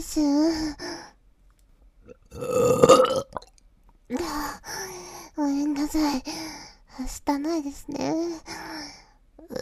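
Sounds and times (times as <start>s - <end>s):
speech: 0.0s - 1.0s, 4.1s - 8.6s, 9.5s - 9.6s
person burping: 2.1s - 3.5s.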